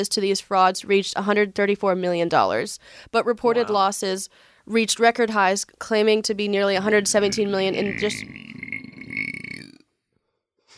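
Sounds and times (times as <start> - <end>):
speech: 0.0 - 8.6
loud burp: 7.0 - 10.0.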